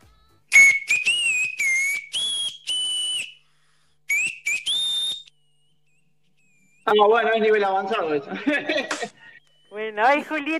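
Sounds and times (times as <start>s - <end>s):
person whistling a melody: 0.5s - 3.4s, 4.1s - 5.7s
speech: 6.9s - 10.5s
laughter: 8.2s - 9.6s.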